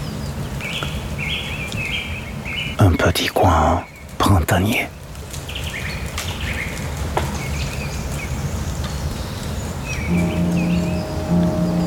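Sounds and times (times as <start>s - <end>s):
birds chirping and twittering: 0.1s - 6.8s, 7.4s - 11.8s
speech: 2.8s - 5.0s
sustained tone: 10.1s - 11.8s.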